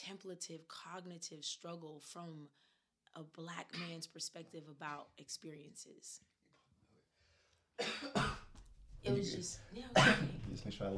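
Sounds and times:
speech: 0:00.0 - 0:06.3, 0:07.8 - 0:08.4, 0:09.0 - 0:10.9
person coughing harshly: 0:07.8 - 0:08.5, 0:10.0 - 0:10.4.

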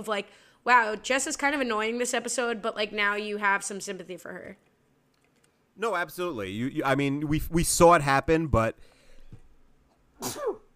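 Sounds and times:
speech: 0:00.0 - 0:04.7, 0:05.8 - 0:08.9, 0:10.2 - 0:10.6
sneeze: 0:10.2 - 0:10.7.

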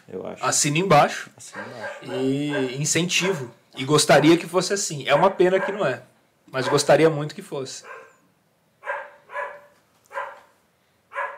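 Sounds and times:
speech: 0:00.1 - 0:08.0
dogs barking: 0:01.5 - 0:04.5, 0:05.1 - 0:07.1, 0:07.8 - 0:11.3.

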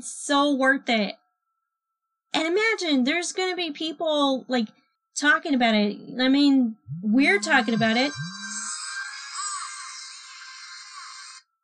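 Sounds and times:
speech: 0:00.0 - 0:01.2, 0:02.3 - 0:08.4
mobile phone ringtone playing a cartoon theme song: 0:07.2 - 0:09.0.

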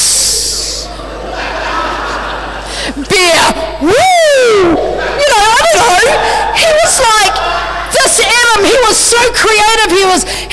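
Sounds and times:
voice imitating snake hiss: 0:00.0 - 0:00.9
laughter: 0:00.5 - 0:03.3, 0:04.3 - 0:09.8
speech: 0:03.1 - 0:04.7, 0:08.6 - 0:10.5.

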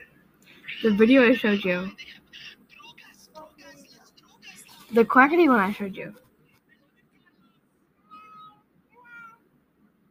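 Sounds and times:
speech: 0:00.8 - 0:02.2, 0:04.9 - 0:06.2
cat meowing: 0:08.0 - 0:09.4.

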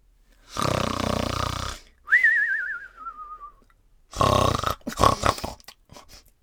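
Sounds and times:
loud snoring of a sleeping giant, likely a voice imitating it: 0:00.4 - 0:01.9, 0:04.1 - 0:05.7.

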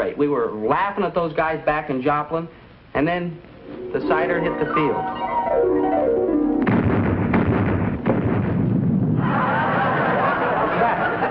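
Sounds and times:
speech: 0:00.0 - 0:06.1
fuel drum exploding during an attack on a base: 0:06.6 - 0:10.0
laughter: 0:09.2 - 0:11.3.

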